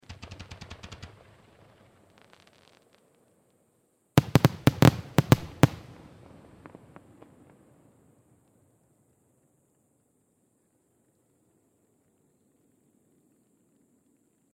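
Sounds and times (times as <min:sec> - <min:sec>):
fireworks firing in rapid succession: 0:00.0 - 0:03.0, 0:04.2 - 0:06.9.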